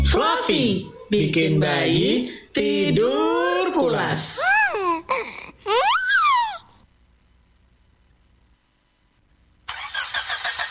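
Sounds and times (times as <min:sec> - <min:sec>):
speech: 0:00.2 - 0:05.8
car engine struggling to start: 0:09.7 - 0:10.6.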